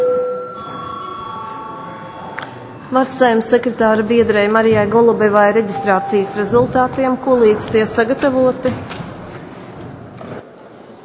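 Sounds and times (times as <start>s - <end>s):
parliament session electric bell ringing: 0.0s - 3.8s
speech: 2.9s - 9.0s.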